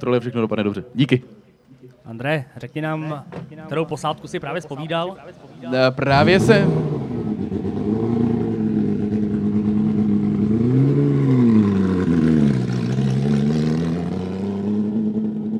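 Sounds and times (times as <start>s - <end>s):
speech: 0.0s - 1.4s, 2.0s - 7.0s
Porsche 997 GT3 race car engine revving hard: 5.8s - 15.5s.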